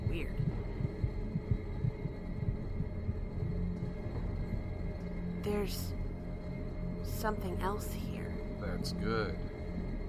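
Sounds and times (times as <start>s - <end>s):
heartbeat: 0.0s - 5.9s
soft droning hum: 0.0s - 10.0s
speech: 0.2s - 0.5s, 5.4s - 6.0s, 7.2s - 9.5s.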